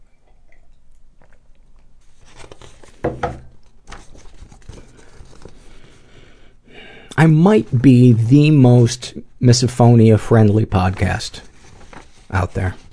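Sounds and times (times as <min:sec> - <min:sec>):
person sipping a hot drink: 0:00.1 - 0:02.0
speech: 0:07.2 - 0:11.5, 0:12.3 - 0:12.8.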